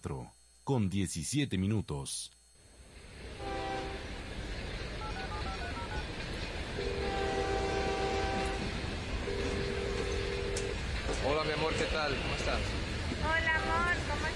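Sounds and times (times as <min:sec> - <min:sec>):
speech: 0:00.0 - 0:02.4, 0:11.4 - 0:14.3
train rumbling at a station: 0:02.8 - 0:14.3
train horn at a station: 0:03.3 - 0:04.2, 0:06.8 - 0:12.6, 0:13.3 - 0:14.3.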